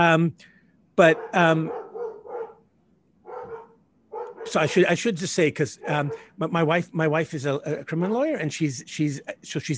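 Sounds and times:
speech: 0.0s - 1.8s, 4.4s - 9.7s
dogs barking at home: 1.0s - 4.8s, 5.7s - 6.4s
dog yelp: 1.1s - 2.6s, 3.2s - 4.6s.

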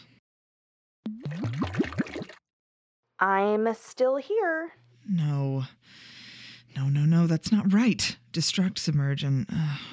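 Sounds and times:
water glugging out of a bottle poured over head: 1.1s - 2.4s
speech: 3.2s - 6.2s, 6.8s - 9.9s.

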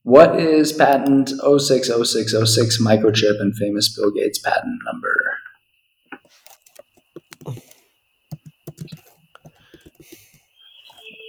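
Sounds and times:
speech: 0.1s - 5.2s
typing on a computer keyboard: 6.2s - 11.2s.

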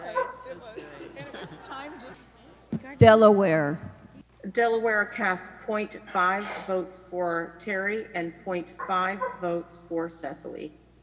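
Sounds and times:
dog barking: 0.0s - 0.4s, 8.8s - 9.5s
laughter: 0.0s - 2.7s
speech: 2.8s - 10.8s.

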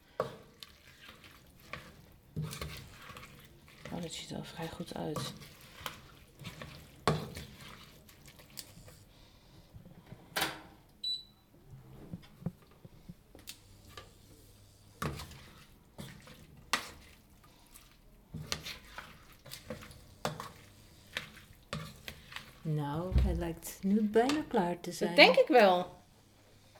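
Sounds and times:
utensil scraping and stirring food in a pan: 0.0s - 9.5s, 12.5s - 26.7s
speech: 4.0s - 5.6s, 23.4s - 26.0s.

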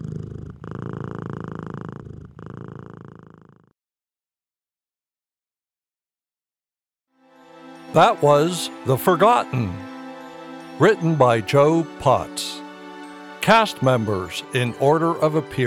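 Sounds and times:
cat purring loudly: 0.0s - 3.7s
speech: 7.9s - 9.9s, 10.8s - 12.6s, 13.5s - 15.6s.

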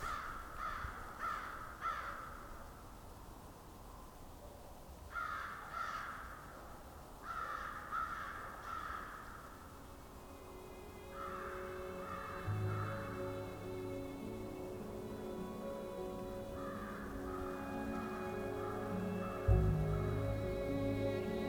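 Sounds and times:
flock of crows cawing in southern Ontario: 0.0s - 2.7s, 5.1s - 9.8s, 11.1s - 13.4s, 16.5s - 19.4s
faint tonal noise: 9.7s - 21.4s.

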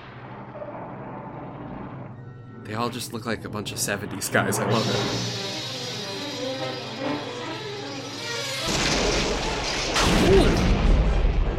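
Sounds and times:
explosion: 0.0s - 2.1s, 8.6s - 11.5s
speech: 2.7s - 5.6s.

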